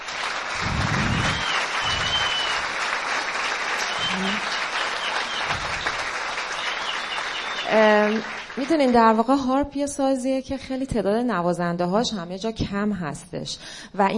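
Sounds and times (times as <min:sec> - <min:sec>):
cheering: 0:00.0 - 0:09.0
audience applauding a harp student: 0:00.0 - 0:09.4
speech: 0:07.7 - 0:14.1.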